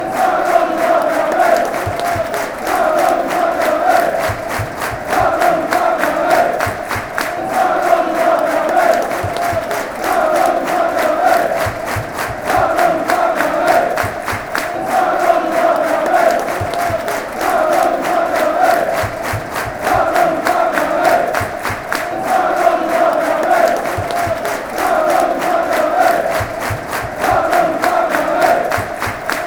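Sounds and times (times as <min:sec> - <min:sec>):
cricket fans chanting: 0:00.0 - 0:29.4.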